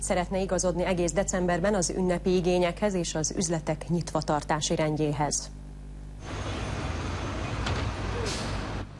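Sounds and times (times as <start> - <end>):
speech: 0.0 - 5.6
city bus engine rumble pulling away: 6.2 - 8.9
city bus air brakes releasing with a hiss: 6.3 - 8.9.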